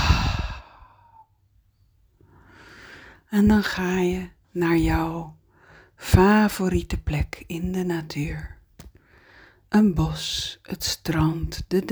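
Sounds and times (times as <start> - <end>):
deep breath in through nose, out through mouth: 0.0 - 1.3, 2.3 - 3.3, 5.5 - 6.0, 9.0 - 9.7
speech: 3.3 - 5.4, 6.0 - 8.6, 9.7 - 11.9.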